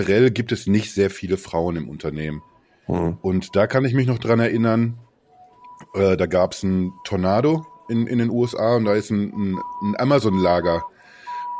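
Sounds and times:
speech: 0:00.0 - 0:05.0, 0:05.8 - 0:10.9
ambulance siren wailing outside: 0:05.3 - 0:11.5.

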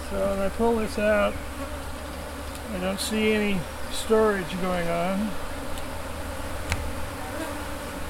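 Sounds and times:
many honeybees buzzing around a backyard beehive: 0:00.0 - 0:08.0
speech: 0:00.1 - 0:01.9, 0:02.7 - 0:05.4
sharp tap: 0:06.7 - 0:07.0.

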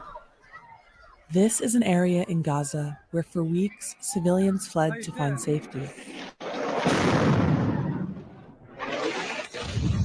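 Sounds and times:
speech: 0:01.3 - 0:06.3
2,000-pound bombs exploding in Gaza: 0:06.4 - 0:08.8.

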